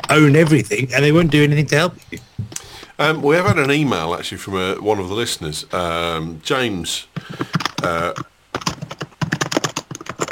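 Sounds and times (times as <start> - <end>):
speech: 0.1 - 8.7
typing on a computer keyboard: 7.2 - 10.2.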